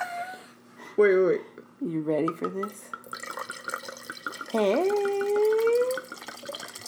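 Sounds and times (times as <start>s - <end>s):
speech: 1.0s - 3.0s, 4.5s - 5.2s
wine pouring from a bottle: 3.0s - 6.8s.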